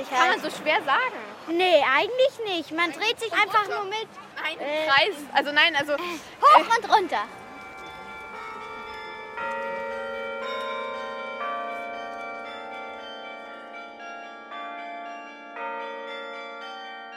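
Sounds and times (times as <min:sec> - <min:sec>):
speech: 0:00.0 - 0:07.4
church tower glockenspiel bells chiming a slow melody: 0:06.6 - 0:17.1.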